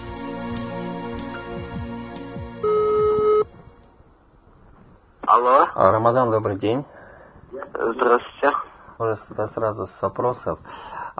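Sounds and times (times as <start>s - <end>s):
soft music: 0.0s - 4.2s
telephone ringback tone of an on-air phone call: 2.6s - 3.5s
speech: 5.4s - 11.1s.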